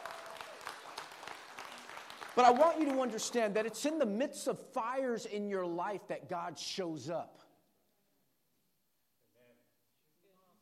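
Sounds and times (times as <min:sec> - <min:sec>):
crowd applauding: 0:00.0 - 0:03.8
speech: 0:02.4 - 0:07.4.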